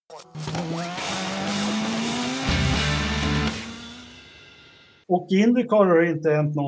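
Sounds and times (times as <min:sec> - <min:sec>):
speech: 0:00.1 - 0:01.0, 0:05.1 - 0:06.6
short racing jingle for an IndyCar segment: 0:00.4 - 0:04.3.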